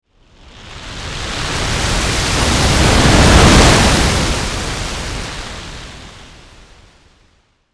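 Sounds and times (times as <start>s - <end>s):
meteor approaching, breaking up in the atmosphere and passing by: 0.2s - 7.3s.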